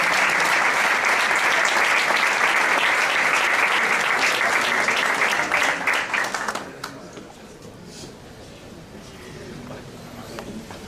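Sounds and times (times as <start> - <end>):
large audience applause: 0.0 - 7.0.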